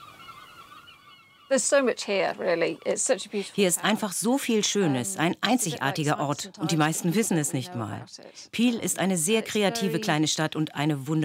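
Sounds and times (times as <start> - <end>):
seagulls screaming heard from an attic studio in the centre of Peel: 0.0 - 2.0
speech: 1.5 - 11.2.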